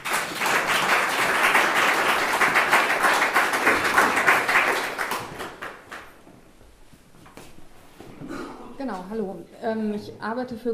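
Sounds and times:
crowd applauding: 0.0 - 6.2
speech: 9.1 - 10.7.

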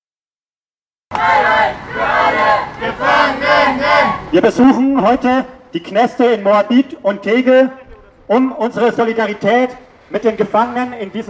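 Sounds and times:
crowd of supporters shouting and chanting outside prisons: 1.1 - 5.8
speech: 2.8 - 11.2.

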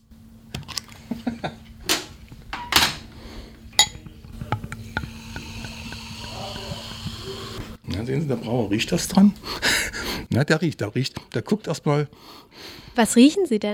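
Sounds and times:
faint hum: 0.0 - 13.7
drinking glasses clinking as taken from a cabinet: 3.8 - 7.0
speech: 8.0 - 13.7.

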